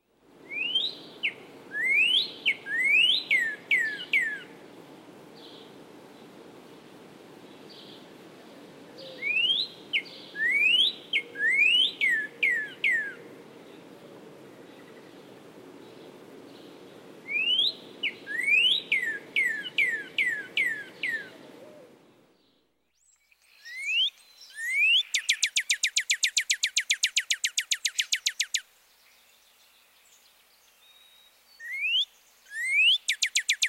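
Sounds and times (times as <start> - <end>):
soft hiss: 0.0 - 33.6
northern cardinal whistling upslurred wheat notes: 0.5 - 4.4, 9.2 - 13.2, 17.3 - 21.4, 23.6 - 28.6, 31.6 - 33.6.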